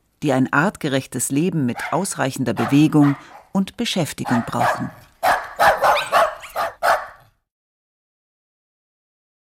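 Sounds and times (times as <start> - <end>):
speech: 0.2 - 5.0
small lapdog barking: 1.8 - 3.6, 4.2 - 7.3.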